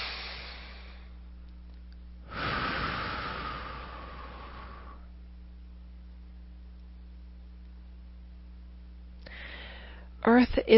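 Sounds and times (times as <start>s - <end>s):
deep breath taken during a spoken meditation: 0.0s - 1.2s, 2.2s - 5.2s, 9.2s - 10.2s
low steady hum: 0.0s - 10.7s.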